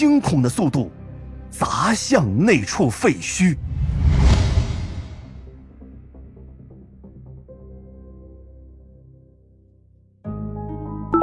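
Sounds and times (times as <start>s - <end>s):
speech: 0.0s - 3.7s
red dodgeball whooshing through the air: 3.6s - 5.4s.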